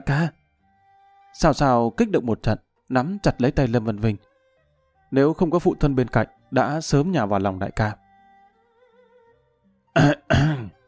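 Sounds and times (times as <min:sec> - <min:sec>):
speech: 0:00.0 - 0:00.4, 0:01.4 - 0:04.3, 0:05.1 - 0:08.0, 0:10.0 - 0:10.6
old man feigning dry coughs: 0:10.0 - 0:10.8.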